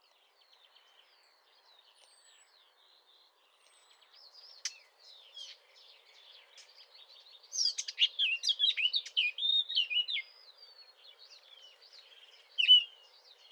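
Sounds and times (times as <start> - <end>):
Eurasian blackcap Sylvia atricapilla singing: 3.8 - 13.5.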